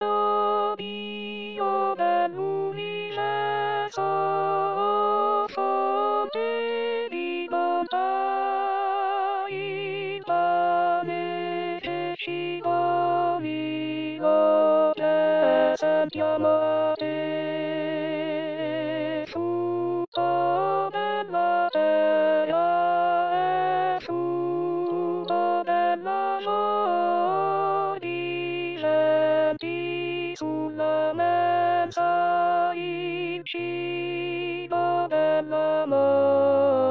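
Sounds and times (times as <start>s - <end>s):
contralto voices singing: 0.0s - 36.8s.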